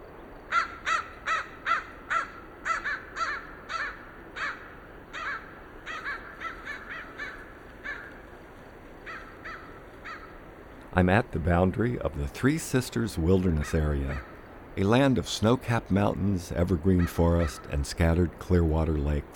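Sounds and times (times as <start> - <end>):
wind pouring down in late afternoon: 0.0 - 19.3
pair of crows cawing overhead at a rocky ledge: 0.5 - 8.3, 9.0 - 10.5, 13.6 - 14.4, 17.0 - 17.8
speech: 11.0 - 19.3.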